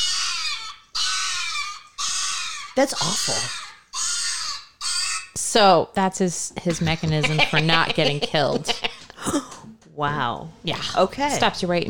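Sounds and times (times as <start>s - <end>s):
chihuahua screaming: 0.0s - 5.4s
speech: 2.8s - 3.6s, 5.5s - 11.8s
laughter: 6.6s - 9.6s.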